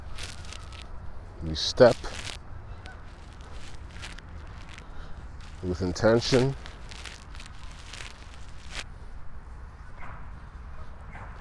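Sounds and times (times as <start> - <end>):
geese honking: 0.0 - 0.9, 1.5 - 8.2
steady outdoor rumble: 0.0 - 11.4
speech: 1.4 - 2.2, 5.6 - 6.7.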